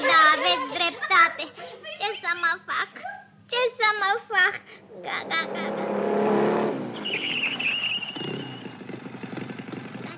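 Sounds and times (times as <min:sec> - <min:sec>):
laughter: 0:00.0 - 0:03.4
speech: 0:03.6 - 0:05.8
motorcycle engine roaring: 0:05.0 - 0:10.1
high whining squeal: 0:05.6 - 0:09.1.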